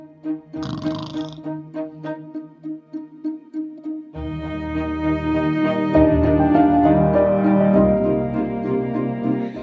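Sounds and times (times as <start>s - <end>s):
soft calming instrumental music composed for horses: 0.0s - 9.6s.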